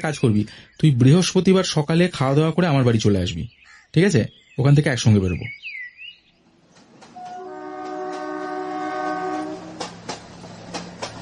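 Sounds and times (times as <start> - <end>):
speech: 0.0 - 5.6
local commuter train wheels clicking on the rails: 6.7 - 11.1
local commuter train horn sounding a chord-like tone: 7.2 - 10.0.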